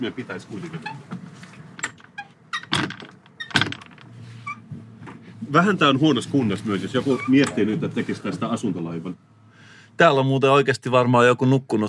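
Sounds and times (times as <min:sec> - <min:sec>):
speech: 0:00.0 - 0:01.2, 0:05.5 - 0:09.3, 0:10.0 - 0:11.8
door on an old run-down boat creaking and scraping: 0:00.6 - 0:04.8, 0:06.8 - 0:08.4.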